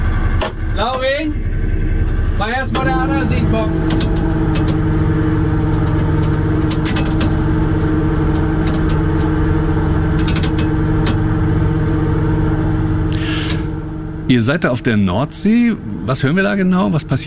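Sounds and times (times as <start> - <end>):
shrimp fishing cutter engine droning as nets are put out: 0.0 - 17.2
speech: 0.8 - 1.5, 2.4 - 4.4, 14.3 - 17.2
mechanical clanks and rattles on a shrimp fishing cutter: 2.0 - 15.4.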